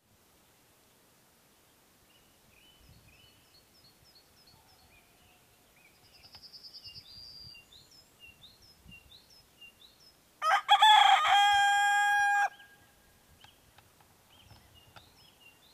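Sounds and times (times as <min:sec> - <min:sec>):
rooster: 0:10.4 - 0:12.9.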